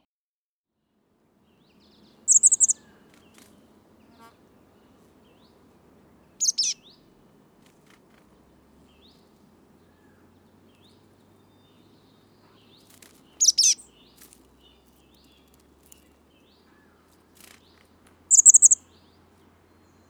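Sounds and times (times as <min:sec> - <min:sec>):
chestnut-backed chickadee calling: 0:01.4 - 0:20.0.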